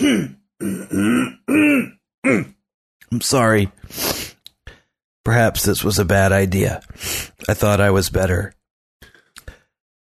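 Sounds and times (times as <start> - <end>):
speech: 0.0 - 1.2, 3.2 - 4.3, 5.2 - 8.6
person clearing throat: 0.0 - 2.6
person coughing: 0.0 - 2.6.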